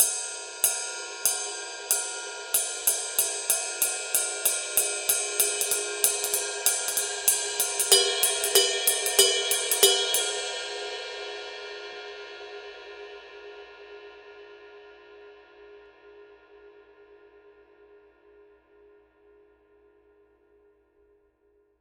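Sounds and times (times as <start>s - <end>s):
ride cymbal pattern: 0.0s - 11.6s.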